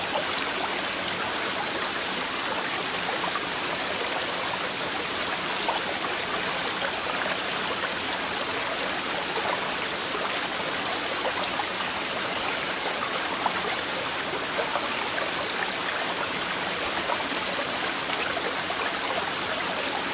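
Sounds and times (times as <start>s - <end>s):
stream rushing and splashing: 0.0s - 20.1s.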